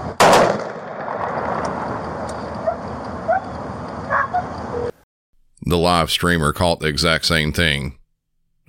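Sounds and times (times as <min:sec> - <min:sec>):
gunshot fired by a police officer: 0:00.2 - 0:01.7
dogs barking: 0:02.6 - 0:05.0
speech: 0:05.8 - 0:08.0.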